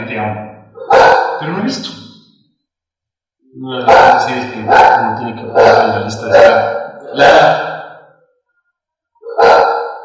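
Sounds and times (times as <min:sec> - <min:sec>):
speech: 0:00.1 - 0:02.1, 0:03.5 - 0:07.7
dog barking at someone: 0:00.8 - 0:01.6, 0:03.8 - 0:07.7, 0:09.2 - 0:10.0.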